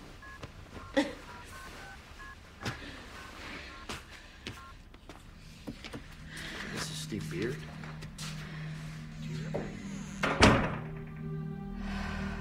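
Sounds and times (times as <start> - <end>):
telephone keypad dialing tones: 0.2 - 2.4
low steady hum: 5.1 - 12.3
bathroom door closing: 9.3 - 11.5.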